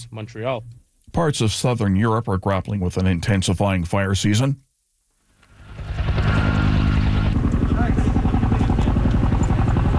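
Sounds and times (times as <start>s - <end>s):
speech: 0.0s - 4.6s
helicopter rotor thumping over wildfire: 5.5s - 9.9s.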